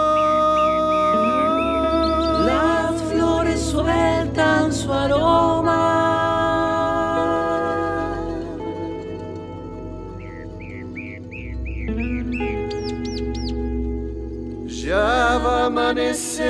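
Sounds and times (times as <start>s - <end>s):
small birds calling at dawn in Merlo: 0.0s - 3.2s, 7.4s - 14.9s
steady tonal drone: 0.0s - 16.4s.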